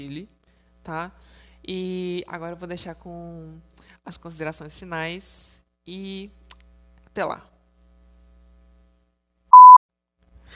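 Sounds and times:
speech: 0:00.0 - 0:06.4, 0:07.2 - 0:07.5
short mid-pitched electronic beep after episode closing: 0:09.5 - 0:09.8.

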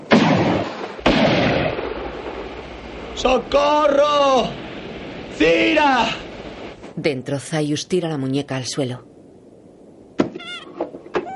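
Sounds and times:
gunshots fired into the air: 0:00.0 - 0:05.9
speech: 0:03.2 - 0:04.6, 0:05.4 - 0:06.2, 0:07.0 - 0:09.1.

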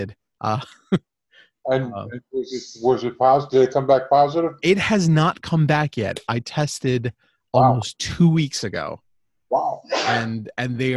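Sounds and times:
speech: 0:00.0 - 0:10.9
brief voice: 0:01.7 - 0:04.5, 0:09.5 - 0:10.4
person coughing: 0:09.9 - 0:10.3.

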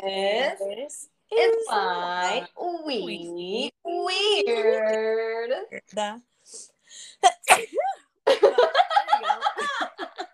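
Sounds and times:
speech: 0:00.0 - 0:08.0
sneeze: 0:07.2 - 0:07.8
rhythmic pulsing laughter: 0:08.3 - 0:10.3.

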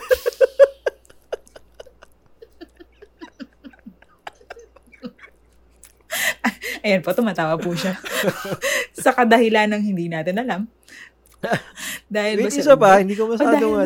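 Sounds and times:
laughter: 0:00.0 - 0:06.8, 0:07.4 - 0:08.9
wet chewing of ube cheese pandesal: 0:05.4 - 0:06.1
speech: 0:06.8 - 0:13.8.

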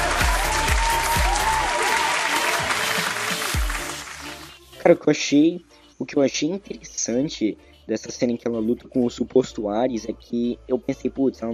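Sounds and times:
crowd applause: 0:00.0 - 0:04.5
speech: 0:04.8 - 0:11.5.

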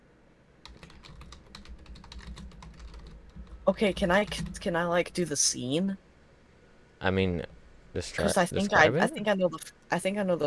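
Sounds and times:
low hum: 0:00.0 - 0:10.4
typing on a computer keyboard: 0:00.6 - 0:04.7
speech: 0:03.7 - 0:06.0, 0:07.0 - 0:10.4.

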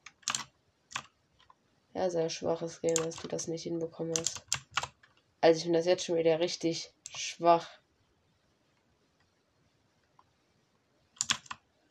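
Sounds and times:
PC keyboard control keys clicking while playing a game: 0:00.0 - 0:01.1, 0:02.8 - 0:03.4, 0:04.1 - 0:05.1, 0:11.2 - 0:11.8
speech: 0:02.0 - 0:04.6, 0:05.4 - 0:07.8.

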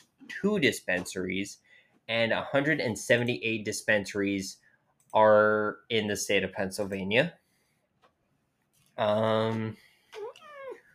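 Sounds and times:
speech: 0:00.4 - 0:07.4, 0:09.0 - 0:10.3
cat yowling and meowing: 0:10.2 - 0:10.9.

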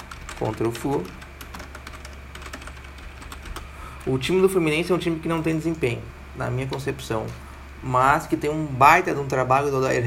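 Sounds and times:
rapid typing on a computer keyboard: 0:00.0 - 0:03.7
speech: 0:00.4 - 0:01.2, 0:04.0 - 0:10.0.

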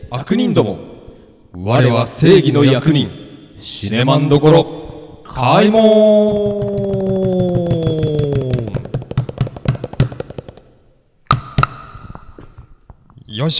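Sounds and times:
speech: 0:00.1 - 0:00.9, 0:01.5 - 0:06.8
loud shouted call with echo effect: 0:05.3 - 0:08.8
sharp knocks: 0:06.2 - 0:13.0.

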